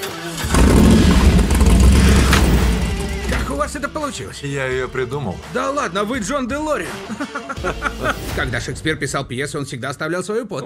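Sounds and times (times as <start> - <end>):
car engine cranking, starting and revving: 0.0 - 4.0
speech: 4.1 - 10.6
laughter: 6.8 - 8.6.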